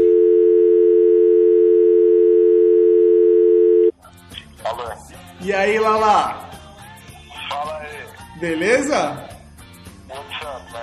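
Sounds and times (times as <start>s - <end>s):
telephone line tone while placing a call: 0.0s - 3.9s
speech: 5.4s - 6.5s, 8.4s - 9.3s.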